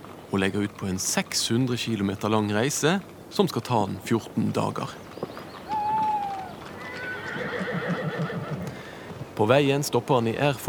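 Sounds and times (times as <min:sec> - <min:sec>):
horse hooves clip-clopping while pulling a cart: 0:00.0 - 0:10.6
speech: 0:00.3 - 0:05.1, 0:09.4 - 0:10.6
horse neighing: 0:05.7 - 0:08.9.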